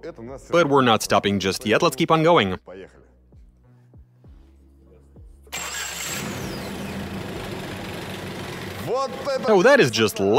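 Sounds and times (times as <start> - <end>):
speech: 0.0 - 3.1, 8.9 - 10.3
starter motor whirring: 5.5 - 9.5
engine overfilled with oil starting and idling roughly: 5.6 - 9.5.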